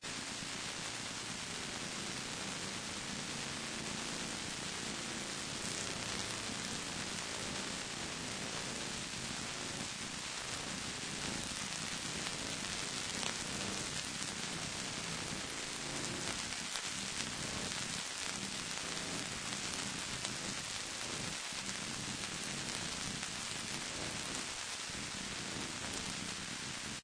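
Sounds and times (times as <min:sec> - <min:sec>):
electricity noise: 0:00.0 - 0:27.0.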